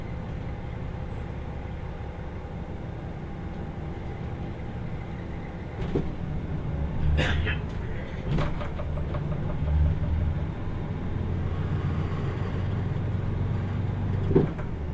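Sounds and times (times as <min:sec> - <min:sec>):
diesel express train engine drone climbing a steep mountain line: 0:00.0 - 0:14.9
rolling rumble inside a diesel express train: 0:00.0 - 0:14.9
sharp metallic clanks and knocks: 0:07.6 - 0:10.2.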